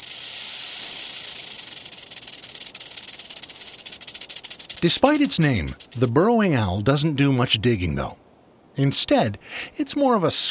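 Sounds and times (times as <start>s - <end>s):
rattlesnake warning rattle: 0.0s - 6.2s
speech: 4.8s - 8.2s, 8.8s - 10.4s.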